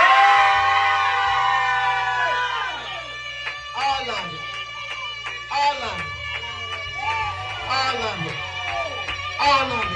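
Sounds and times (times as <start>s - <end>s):
audience screaming together: 0.0s - 3.2s, 6.6s - 9.8s.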